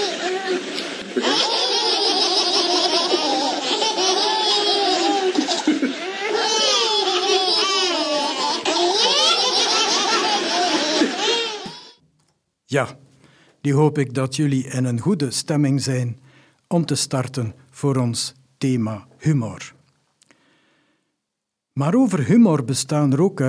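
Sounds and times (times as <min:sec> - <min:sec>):
baby quadruplets laughing and giggling: 0:00.0 - 0:12.0
speech: 0:12.7 - 0:13.0, 0:13.6 - 0:19.8, 0:21.8 - 0:23.4.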